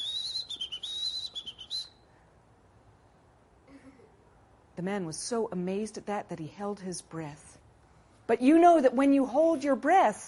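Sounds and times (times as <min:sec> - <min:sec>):
person whistling a warbling birdsong imitation: 0:00.0 - 0:02.0
speech: 0:04.8 - 0:07.5, 0:08.3 - 0:10.2.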